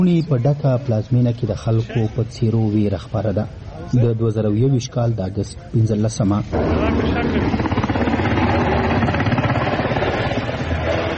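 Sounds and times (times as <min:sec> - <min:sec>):
speech: 0:00.0 - 0:07.8
helicopters flying over Kabul: 0:06.4 - 0:11.1.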